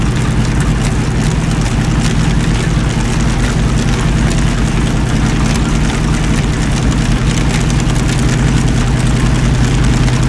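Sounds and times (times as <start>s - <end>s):
Panther tank engine revving under load: 0.0s - 10.2s.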